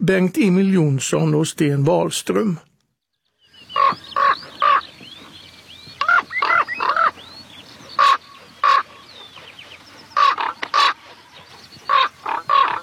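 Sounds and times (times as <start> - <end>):
speech: 0.0 - 2.7
common raven croaking in flight: 3.8 - 4.9, 6.0 - 7.2, 8.0 - 12.8.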